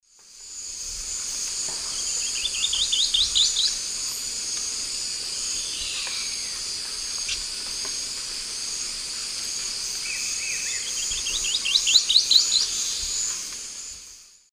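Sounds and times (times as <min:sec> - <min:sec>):
Glyphorynchus spirurus song in South America eastern lowlands: 0:01.9 - 0:03.8, 0:10.0 - 0:13.3.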